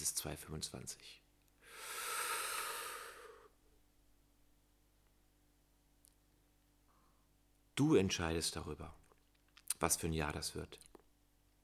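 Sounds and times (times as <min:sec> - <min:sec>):
speech: 0:00.0 - 0:01.2, 0:07.8 - 0:09.0, 0:09.8 - 0:10.9
deep airy breath: 0:01.6 - 0:03.6.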